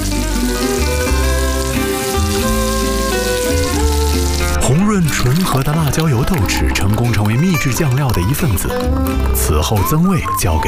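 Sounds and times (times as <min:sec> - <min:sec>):
Erjingtiao chili flakes sizzling in hot oil while stirred: 0:00.0 - 0:06.6
speech: 0:05.2 - 0:10.6.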